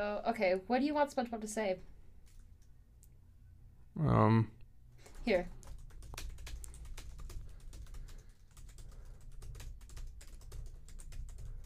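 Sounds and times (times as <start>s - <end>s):
speech: 0.0s - 2.0s, 4.0s - 4.6s, 5.2s - 5.6s
low hum: 0.0s - 11.6s
clacking of keys on a computer keyboard: 5.0s - 11.6s.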